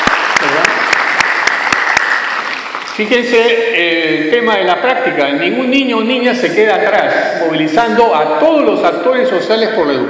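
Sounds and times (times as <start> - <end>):
audience clapping at an education gathering: 0.0 - 3.6
speech: 3.0 - 10.0.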